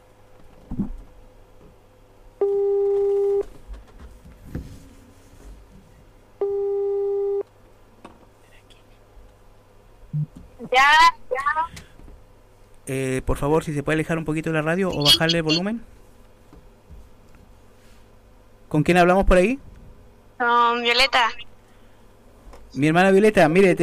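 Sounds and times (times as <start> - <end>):
low noise: 0.0 - 23.8
telephone line tone beeps while placing a call: 2.4 - 3.4, 6.4 - 7.4
speech: 12.9 - 16.0, 18.7 - 19.7, 20.4 - 21.4, 22.8 - 23.8.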